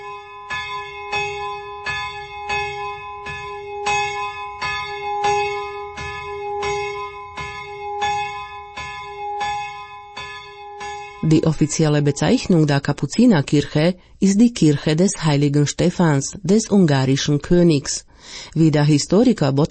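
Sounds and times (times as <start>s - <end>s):
church bell rung by hand with rope: 0.0s - 13.7s
speech: 11.3s - 19.7s.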